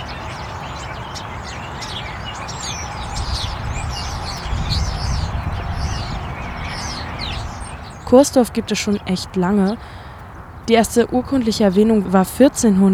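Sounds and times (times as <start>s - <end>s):
birds chirping and singing: 0.0s - 12.9s
motorway traffic rumble: 0.0s - 12.9s
speech: 8.1s - 10.0s, 10.7s - 12.9s.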